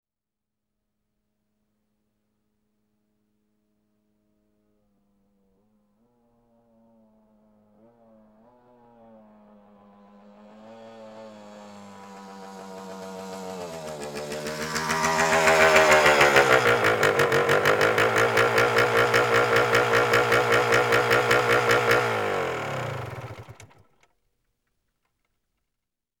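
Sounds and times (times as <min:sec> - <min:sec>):
dirt motorcycle pulling up: 0:06.7 - 0:24.1.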